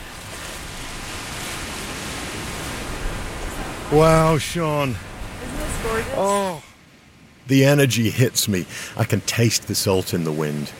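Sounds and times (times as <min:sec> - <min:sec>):
ocean surf waves crashing: 0:00.0 - 0:10.7
speech: 0:03.9 - 0:06.7, 0:07.5 - 0:10.7.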